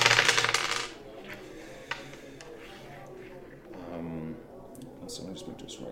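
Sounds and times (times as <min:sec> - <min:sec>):
six-sided dice clattering across a hard tabletop: 0:00.0 - 0:01.0
speech: 0:05.2 - 0:05.8.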